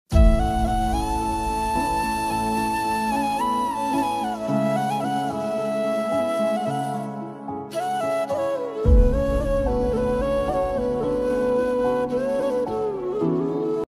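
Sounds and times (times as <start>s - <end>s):
flute ringtone: 0.1s - 13.8s.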